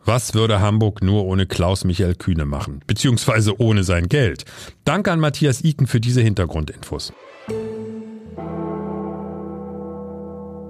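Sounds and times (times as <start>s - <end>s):
speech: 0.1s - 7.7s
deep heavy bell tolling in rock song intro: 7.2s - 10.6s.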